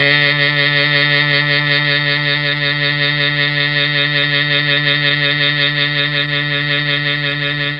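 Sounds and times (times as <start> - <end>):
D2 MKII saxophone sound on a mellotron: 0.0 - 7.7.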